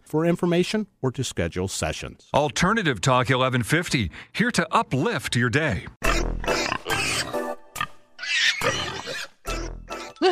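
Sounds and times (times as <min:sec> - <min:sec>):
speech: 0:00.1 - 0:07.2
pigs oinking and grunting: 0:06.0 - 0:10.3.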